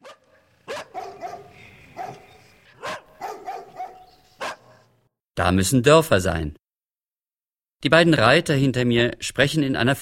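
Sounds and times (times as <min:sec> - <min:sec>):
dogs barking far off at night beyond a moonlit forest: 0:00.0 - 0:05.0
speech: 0:05.4 - 0:06.6, 0:07.8 - 0:10.0.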